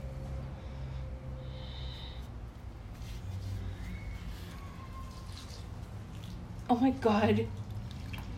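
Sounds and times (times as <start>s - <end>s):
water poured from a glass onto soil in a plant pot: 4.6s - 8.3s
speech: 6.7s - 7.6s.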